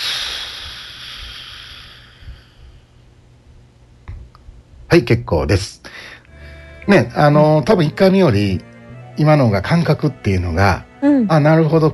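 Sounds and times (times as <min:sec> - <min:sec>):
slow breath exhaled through the mouth: 0:00.0 - 0:02.9
speech: 0:04.9 - 0:06.0, 0:06.9 - 0:11.9.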